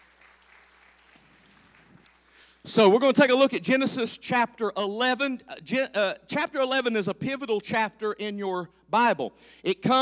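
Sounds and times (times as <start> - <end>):
congregation clapping in a large room: 0.0 - 2.5
speech: 2.6 - 10.0.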